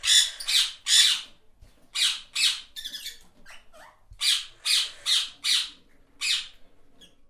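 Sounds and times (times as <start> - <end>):
parrot chatter: 0.0 - 1.3, 1.9 - 7.2
parrot squawking: 0.0 - 1.3, 2.0 - 6.6.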